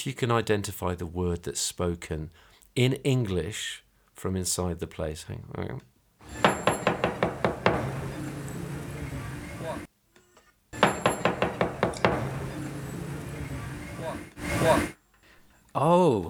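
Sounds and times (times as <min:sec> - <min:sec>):
speech: 0:00.0 - 0:06.6, 0:15.8 - 0:16.2
steady wash of noise: 0:00.0 - 0:16.2
sharp knocks on a door: 0:06.3 - 0:08.5, 0:10.8 - 0:12.8.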